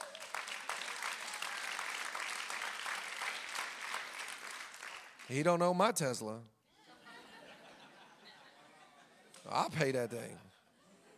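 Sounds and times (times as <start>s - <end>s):
audience clapping: 0.0s - 5.5s
speech: 5.3s - 6.5s, 9.4s - 10.5s
laughter: 6.7s - 11.1s.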